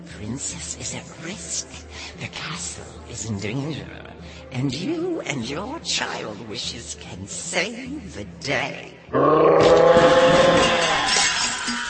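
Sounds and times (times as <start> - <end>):
speech: 0.0 - 10.5
deep monstrous dragon roar: 9.1 - 11.2.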